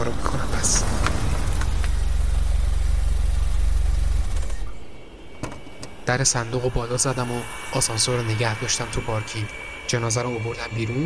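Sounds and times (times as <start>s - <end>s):
speech: 0.0s - 1.1s, 6.1s - 11.0s
car engine idling while parking: 0.0s - 4.7s.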